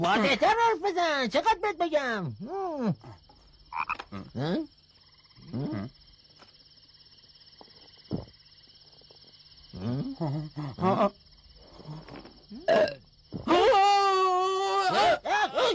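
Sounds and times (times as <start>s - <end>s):
speech: 0.0s - 3.2s, 3.8s - 4.8s, 5.5s - 6.0s, 9.8s - 11.2s, 11.9s - 15.7s
frog croaking: 2.3s - 13.4s.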